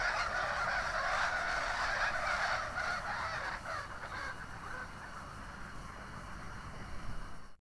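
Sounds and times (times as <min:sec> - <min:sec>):
flock of birds calling: 0:00.0 - 0:04.9
flock of birds flying overhead: 0:00.0 - 0:07.4.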